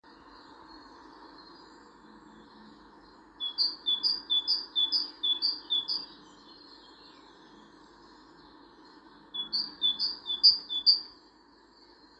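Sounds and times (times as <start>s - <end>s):
great tit calling: 3.4s - 6.2s, 9.4s - 11.1s.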